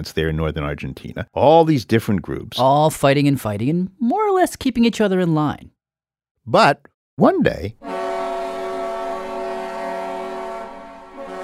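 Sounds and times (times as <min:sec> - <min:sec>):
speech: 0:00.0 - 0:05.7, 0:06.4 - 0:07.9
steamship steam whistle blast as the ship arrives at a port in the 1800s: 0:07.8 - 0:11.4.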